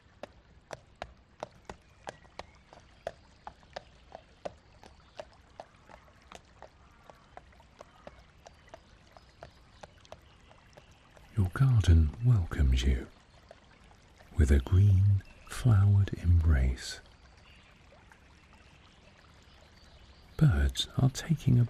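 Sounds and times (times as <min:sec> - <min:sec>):
hooves of a pony pulling a trap clip-clopping on a road: 0:00.0 - 0:11.6
speech: 0:11.4 - 0:13.2, 0:14.4 - 0:17.0, 0:20.4 - 0:21.6.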